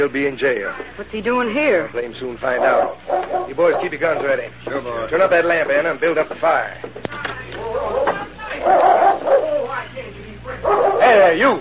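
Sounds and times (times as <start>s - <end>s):
speech: 0.0s - 7.2s, 8.6s - 9.0s, 10.6s - 11.5s
dog barking and whimpering: 2.6s - 4.4s, 7.6s - 9.8s, 10.6s - 11.3s.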